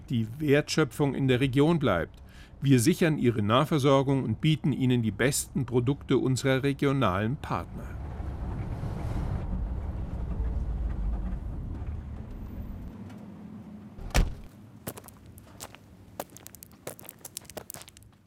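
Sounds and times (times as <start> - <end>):
speech: 0.1 - 8.0
car engine rumble: 7.8 - 16.2
loud thump: 14.0 - 14.5
crunching on loose gravel: 14.3 - 18.2.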